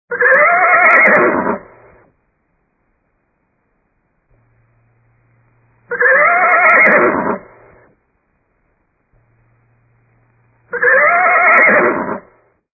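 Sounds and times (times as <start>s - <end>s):
horse neighing: 0.1s - 1.7s, 5.9s - 7.6s, 10.7s - 12.3s.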